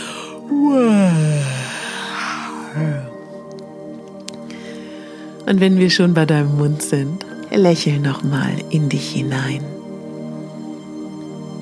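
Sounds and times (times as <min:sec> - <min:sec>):
person giving a short voiced sigh: 0:00.0 - 0:03.3
person yawning with a voiced downward-sliding tone: 0:00.0 - 0:03.3
speech: 0:05.5 - 0:09.8.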